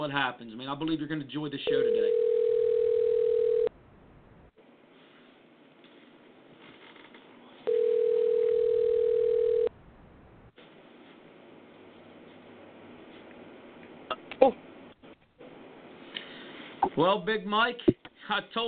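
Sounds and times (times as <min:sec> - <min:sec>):
speech: 0:00.0 - 0:02.2, 0:17.0 - 0:18.6
ringback tone of an outgoing telephone call: 0:01.7 - 0:03.7, 0:07.7 - 0:09.7.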